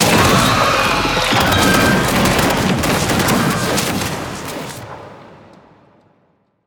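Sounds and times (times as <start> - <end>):
boss spider creature dying: 0.0 - 3.1.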